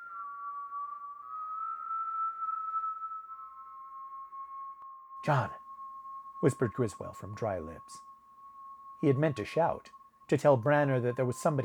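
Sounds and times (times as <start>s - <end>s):
thin sustained eerie whistle wavering in pitch: 0.0s - 11.6s
speech: 5.2s - 5.6s, 6.4s - 8.1s, 9.0s - 11.6s.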